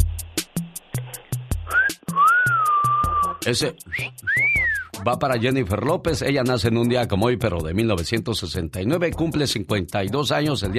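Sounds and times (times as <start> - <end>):
steady thumping music beat: 0.0 - 10.7
two-part wolf whistle: 1.7 - 5.0
speech: 3.4 - 10.7.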